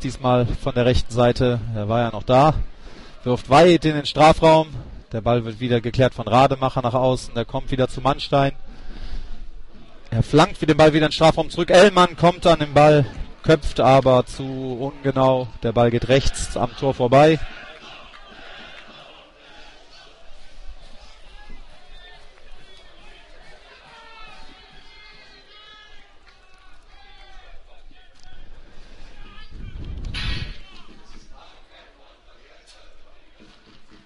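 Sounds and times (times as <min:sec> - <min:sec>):
speech: 0:00.0 - 0:08.7, 0:10.1 - 0:17.6
large stadium crowd of football fans chanting and cheering: 0:10.9 - 0:34.0.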